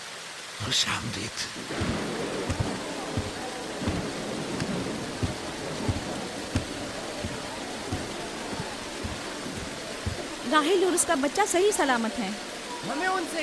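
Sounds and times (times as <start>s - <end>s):
steady rain pouring: 0.0s - 13.4s
speech: 0.6s - 2.3s, 10.5s - 13.4s
soft low thumps: 1.6s - 11.4s.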